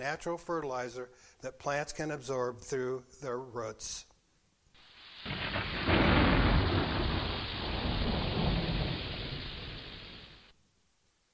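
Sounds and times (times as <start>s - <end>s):
speech: 0.0s - 4.1s, 5.2s - 6.0s
steady hissing rainfall: 4.8s - 10.6s
deep roll of thunder: 5.2s - 10.5s.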